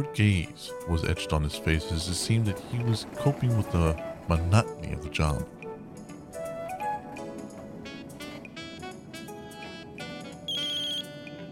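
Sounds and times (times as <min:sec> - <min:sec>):
speech: 0:00.0 - 0:05.6
cell phone ringing with a bright melodic electronic ringtone: 0:10.5 - 0:11.2.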